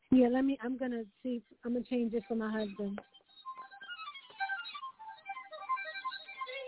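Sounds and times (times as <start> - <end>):
speech: 0.2 - 3.2
violin ringtone melody from small phone speaker: 2.5 - 6.6.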